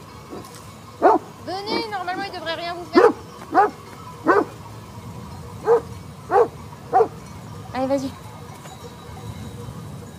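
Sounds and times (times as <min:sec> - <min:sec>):
nervous guard dog barking: 0:00.3 - 0:01.8, 0:03.0 - 0:04.6, 0:05.6 - 0:07.2
speech: 0:01.5 - 0:03.8, 0:07.8 - 0:08.2.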